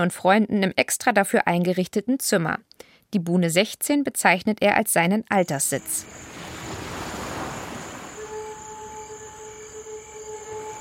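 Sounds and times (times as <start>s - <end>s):
speech: 0.0s - 6.4s
faint tonal hum: 5.4s - 10.7s
ocean wave breaking at a surf spot off an island coast: 5.6s - 10.7s.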